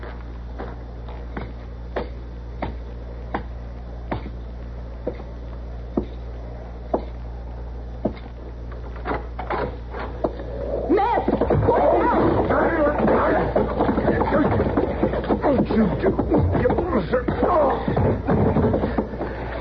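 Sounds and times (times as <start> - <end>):
steady low hum: 0.0 - 19.5
wooden chair being lifted and moved: 11.3 - 19.3.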